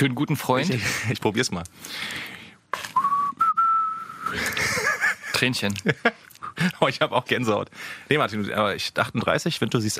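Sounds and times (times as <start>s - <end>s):
speech: 0.0s - 2.9s, 5.4s - 9.9s
person whistling a slow rock ballad melody: 3.0s - 4.3s
laughter: 4.3s - 6.8s.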